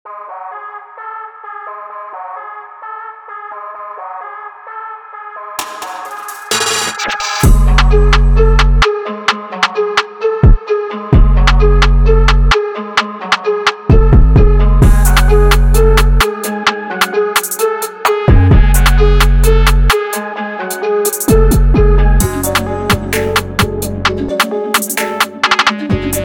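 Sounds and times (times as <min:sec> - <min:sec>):
trap music: 0:00.1 - 0:26.2.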